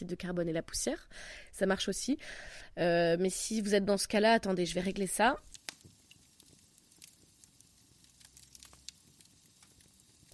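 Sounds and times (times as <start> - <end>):
speech: 0.0 - 5.5
fireplace crackling: 4.9 - 10.3
sharp pops and snaps of fireplace: 5.4 - 10.3.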